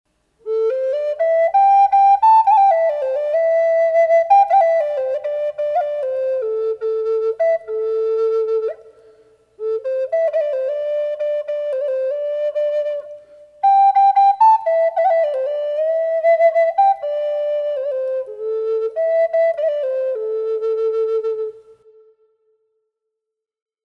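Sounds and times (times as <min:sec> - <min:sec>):
song bird flute with reverb: 0:00.4 - 0:22.6.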